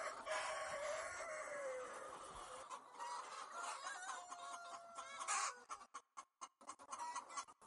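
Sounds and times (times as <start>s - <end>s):
rooster-like crow: 0.0s - 2.1s, 3.5s - 5.6s
flock of chickens clucking and squawking: 0.0s - 7.6s.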